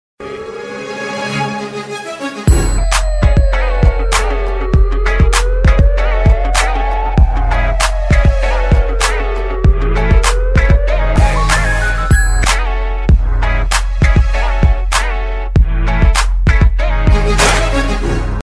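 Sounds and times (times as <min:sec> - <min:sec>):
hip hop music: 0:02.3 - 0:18.4
siren in hip hop music: 0:02.8 - 0:12.5.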